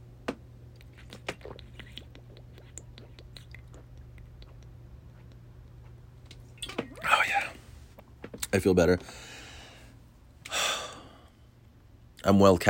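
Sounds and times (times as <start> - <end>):
person sipping water from a big jug: 0.8 - 6.0, 6.8 - 7.8
soft swallowing: 0.8 - 6.0
speech: 8.5 - 9.3, 12.3 - 12.6.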